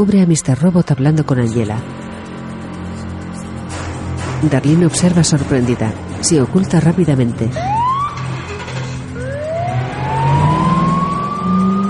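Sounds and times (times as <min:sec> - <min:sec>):
speech: 0:00.0 - 0:02.0, 0:04.4 - 0:07.8
police car engine rumble: 0:00.8 - 0:11.8
police car siren wailing: 0:07.6 - 0:11.8.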